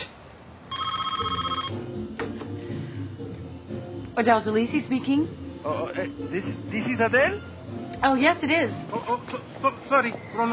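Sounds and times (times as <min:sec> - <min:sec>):
telephone ringing with electronic trill: 0:00.7 - 0:01.8
speech: 0:04.2 - 0:10.5.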